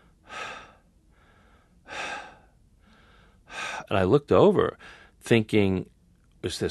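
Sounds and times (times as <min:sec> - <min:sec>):
labored asthmatic breathing: 0:00.0 - 0:03.9
speech: 0:03.9 - 0:06.6.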